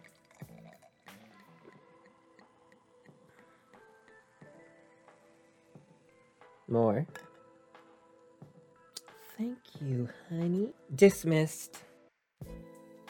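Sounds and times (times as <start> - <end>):
pink Moscato sparkling wine poured into a glass: 0.0 - 3.5
speech: 6.7 - 7.3, 9.4 - 11.9.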